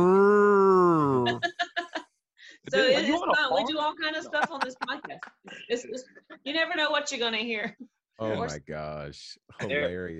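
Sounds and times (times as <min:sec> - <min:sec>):
human voice imitating a passing motorcycle: 0:00.0 - 0:01.4
laughter: 0:01.0 - 0:02.0, 0:02.7 - 0:06.5
speech: 0:02.7 - 0:10.1.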